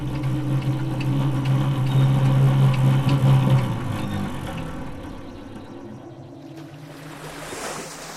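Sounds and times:
low engine-like hum: 0:00.0 - 0:08.1
sea surf with waves breaking: 0:06.5 - 0:08.1.

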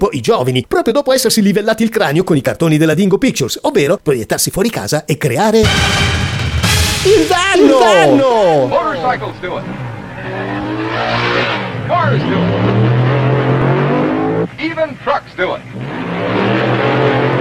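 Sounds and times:
speech: 0:00.1 - 0:12.7, 0:14.6 - 0:16.3
car tires screeching: 0:07.3 - 0:17.3
car engine revving: 0:08.2 - 0:17.3.

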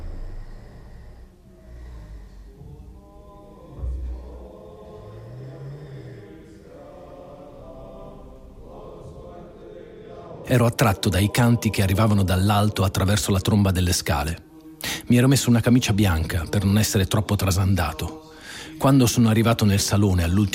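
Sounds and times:
man snoring in a room in the morning: 0:00.0 - 0:02.6
speech: 0:10.5 - 0:14.5, 0:15.1 - 0:20.5.

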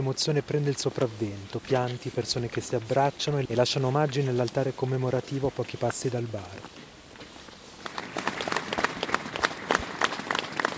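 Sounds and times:
speech: 0:00.0 - 0:06.8
crowd applauding at a memorial gathering: 0:07.8 - 0:10.7.

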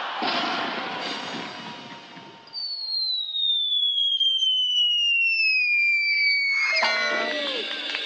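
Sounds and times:
loud clattering crash landing on a huge cushion: 0:00.2 - 0:02.4
rushing burst of a woman launched from a cannon: 0:00.2 - 0:02.5
long steadily falling whistle: 0:02.2 - 0:07.9.

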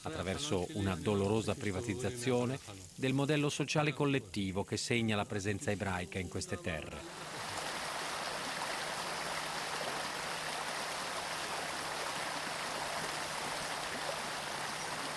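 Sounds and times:
speech: 0:00.0 - 0:07.3
river water rushing: 0:07.1 - 0:15.1.

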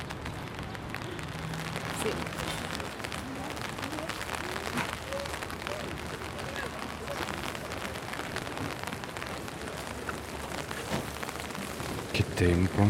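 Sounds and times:
heavy rain pouring onto pavement by the lake in Geneva: 0:00.0 - 0:12.8
speech: 0:02.0 - 0:02.4, 0:12.4 - 0:12.8.

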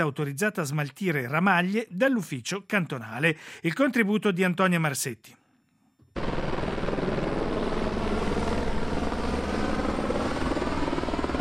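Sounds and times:
speech: 0:00.0 - 0:05.4
five small helicopters and a Super Puma dropping water over a wildfire near Brusio: 0:06.2 - 0:11.3.

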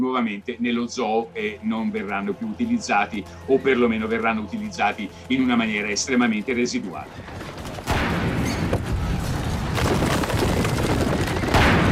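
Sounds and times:
speech: 0:00.1 - 0:07.5
artillery fire in an ambush during a siege: 0:07.8 - 0:11.8.

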